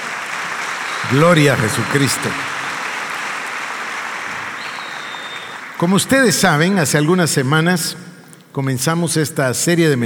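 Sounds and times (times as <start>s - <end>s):
church audience applauding: 0.0s - 6.6s
speech: 1.1s - 2.6s, 5.8s - 10.0s.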